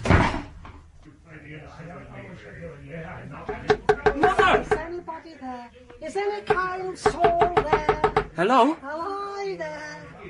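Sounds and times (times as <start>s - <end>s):
heavy door shutting with a thud: 0.0s - 0.5s
speech: 1.6s - 9.9s.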